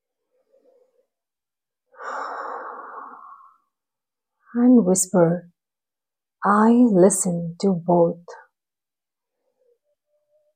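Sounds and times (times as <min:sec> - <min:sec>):
slow unhurried breath: 0:01.9 - 0:03.8
speech: 0:04.5 - 0:05.5, 0:06.4 - 0:08.4.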